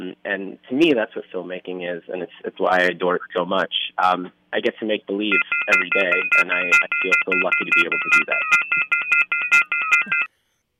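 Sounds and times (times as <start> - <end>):
speech: 0.2 - 9.3
electronic telephone tone pattern of pulsed beeps: 5.3 - 10.3.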